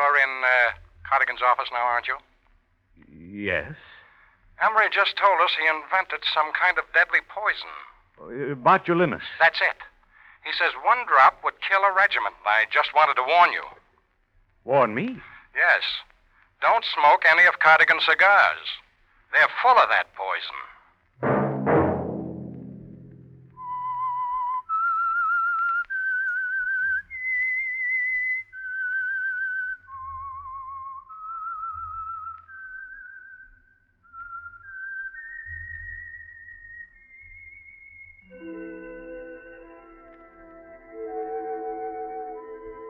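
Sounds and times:
speech: 0:00.2 - 0:02.3, 0:03.3 - 0:03.9, 0:04.6 - 0:13.8, 0:14.6 - 0:21.4
loud musical hit: 0:21.2 - 0:23.8
soft instrumental backing: 0:21.2 - 0:24.2, 0:38.3 - 0:42.8
person whistling a slow eerie theme tune: 0:23.5 - 0:42.8.

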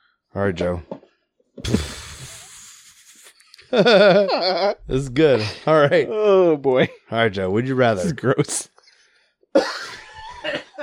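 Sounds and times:
speech: 0:00.4 - 0:01.0, 0:01.6 - 0:02.0, 0:03.7 - 0:08.7, 0:09.5 - 0:10.8
laughter: 0:02.8 - 0:06.1, 0:09.6 - 0:10.8
person coughing: 0:09.6 - 0:10.5.

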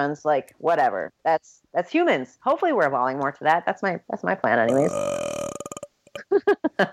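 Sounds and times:
speech: 0:00.0 - 0:05.2, 0:06.3 - 0:06.9
loud rattling burp: 0:04.7 - 0:06.2.

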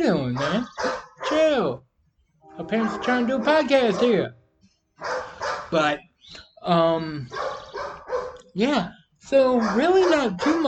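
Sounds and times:
speech: 0:00.0 - 0:01.8, 0:02.7 - 0:04.4, 0:05.7 - 0:07.5, 0:08.6 - 0:10.6
neighbour's dog barking: 0:00.2 - 0:01.5, 0:02.8 - 0:04.3, 0:05.0 - 0:05.8, 0:07.3 - 0:08.5, 0:09.5 - 0:10.6.

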